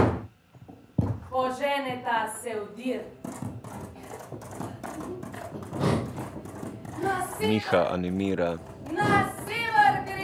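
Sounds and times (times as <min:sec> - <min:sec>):
speech: 0:01.4 - 0:03.5, 0:07.0 - 0:09.3
reindeer galloping hoofbeats across snow: 0:03.1 - 0:10.2.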